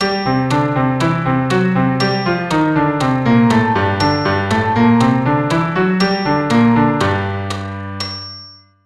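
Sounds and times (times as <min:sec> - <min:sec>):
melody in G minor: 0:00.0 - 0:08.1.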